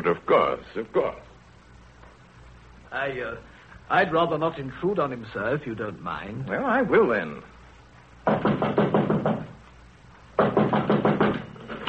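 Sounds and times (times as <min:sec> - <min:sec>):
speech: 0:00.0 - 0:01.3, 0:02.9 - 0:07.6, 0:08.2 - 0:09.0
rapid firm knocking on a locked wooden study door: 0:08.2 - 0:09.6, 0:10.4 - 0:11.6.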